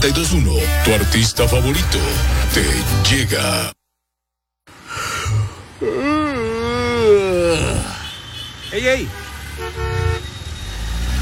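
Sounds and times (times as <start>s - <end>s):
speech: 0.0s - 3.8s, 8.8s - 9.8s
low rumble of passing traffic: 4.7s - 11.2s
car horn blaring in traffic: 8.0s - 10.4s.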